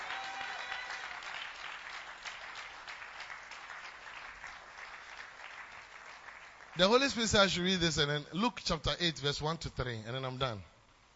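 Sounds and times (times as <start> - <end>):
congregation clapping: 0.0 - 7.6
speech: 6.8 - 10.7.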